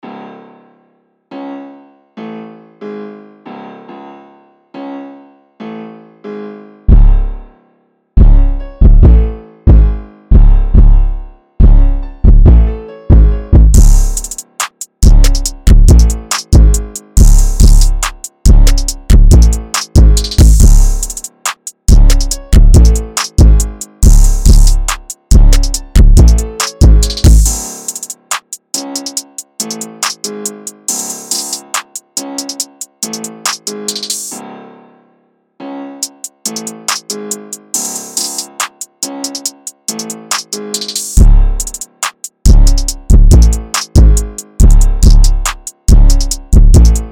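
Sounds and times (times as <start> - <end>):
very hard piano at 140 bpm: 0.0 - 47.1
beats: 8.2 - 34.3, 36.0 - 47.1.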